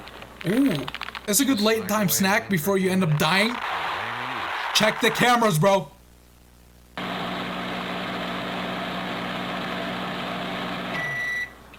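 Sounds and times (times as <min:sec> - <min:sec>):
speech: 0:00.4 - 0:03.9, 0:04.8 - 0:06.0
microwave oven humming in an office: 0:07.0 - 0:11.7
microwave oven beep tone: 0:10.9 - 0:11.6.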